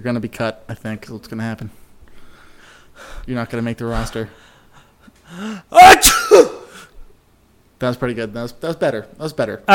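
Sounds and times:
speech: 0.0 - 1.8, 3.0 - 4.5, 5.3 - 6.5, 7.8 - 9.7
person faking a sneeze with their voice: 5.8 - 6.8.

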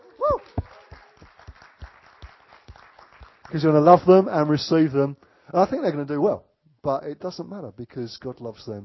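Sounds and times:
audience applauding: 0.0 - 4.3
speech: 3.5 - 8.8.

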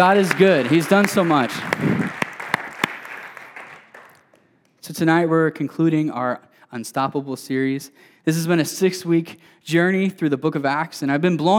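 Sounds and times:
speech: 0.0 - 2.2, 4.9 - 11.5
audience clapping: 0.0 - 4.8.

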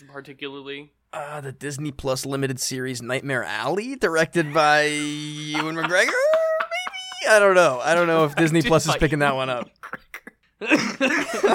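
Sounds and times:
speech: 0.1 - 6.4, 7.2 - 9.8, 10.6 - 11.5
laughter: 4.2 - 11.5
raspy coughing fit: 9.7 - 11.2.

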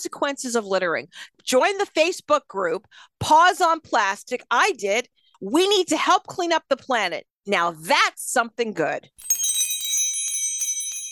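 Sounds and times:
speech: 0.0 - 9.3
bright cluster of bell-like chimes as closing signal: 9.2 - 11.1.

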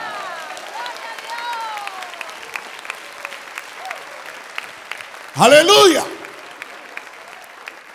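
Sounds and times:
audience clapping: 0.0 - 7.9
speech: 5.4 - 6.2
person shouting: 5.4 - 6.3.

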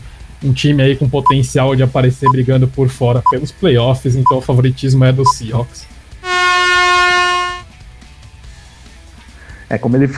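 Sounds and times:
speech: 0.4 - 6.0, 9.7 - 10.1
horn buzzer marking time running out: 6.2 - 7.7.

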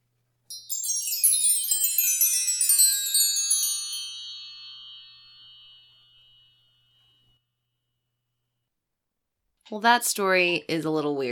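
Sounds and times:
wind chime tinkling: 0.5 - 7.4
speech: 9.7 - 11.2.

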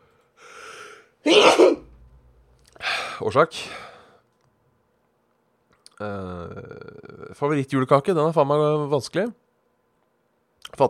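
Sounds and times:
speech: 1.2 - 1.6, 3.2 - 3.9, 6.0 - 9.4
person sneezing: 1.2 - 1.9.

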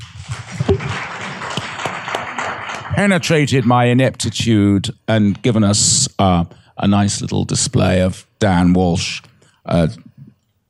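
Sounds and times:
audience applause at a live panel event: 0.0 - 3.3
speech: 3.0 - 10.1.

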